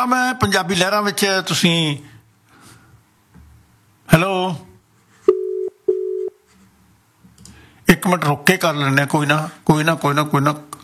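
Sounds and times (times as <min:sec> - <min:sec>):
speech: 0:00.0 - 0:02.1, 0:04.1 - 0:04.7, 0:08.0 - 0:10.7
ringback tone of an unanswered outgoing telephone call: 0:05.3 - 0:06.4.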